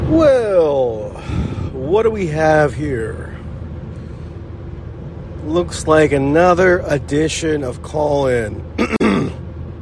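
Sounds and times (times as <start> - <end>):
speech: 0.1 - 0.6, 1.9 - 3.3, 5.4 - 9.2
short gruff throat clearing: 8.8 - 9.4.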